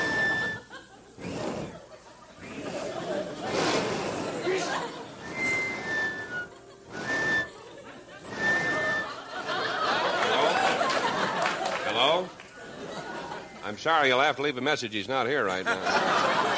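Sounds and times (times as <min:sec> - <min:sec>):
thin whistled notes through a small opening: 0:00.0 - 0:01.8, 0:05.2 - 0:07.6, 0:08.2 - 0:09.3
people chuckling: 0:00.0 - 0:13.6, 0:15.5 - 0:16.5
people chattering: 0:00.0 - 0:16.5
speech: 0:13.8 - 0:16.5.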